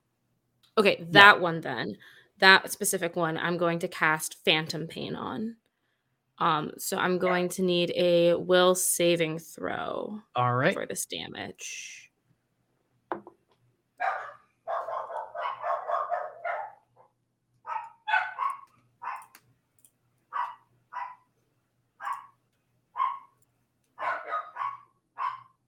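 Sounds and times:
speech: 0.8s - 5.6s, 6.4s - 12.0s
pet dogs barking: 14.0s - 16.9s, 17.6s - 19.3s, 20.3s - 21.3s, 22.0s - 22.4s, 23.0s - 23.4s, 24.0s - 25.6s.

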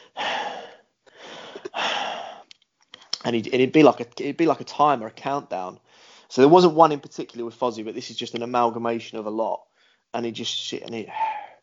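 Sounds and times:
man imitating slow calm breathing: 0.0s - 2.5s, 11.0s - 11.6s
speech: 3.3s - 11.3s.

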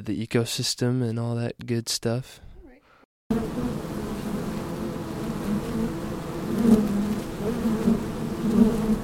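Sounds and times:
speech: 0.0s - 2.5s
many bees buzzing together: 3.3s - 9.0s.

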